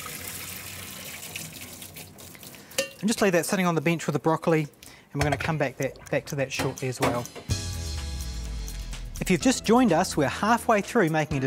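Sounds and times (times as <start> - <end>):
water from cooked cauliflower pouring through a colander: 0.0 - 3.1
speech: 3.0 - 7.5, 9.2 - 11.4.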